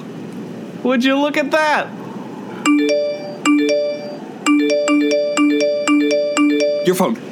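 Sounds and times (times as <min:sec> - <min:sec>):
speech: 0:00.8 - 0:02.0, 0:02.8 - 0:03.0, 0:06.9 - 0:07.2
bright electronic phone ringtone: 0:02.7 - 0:07.1.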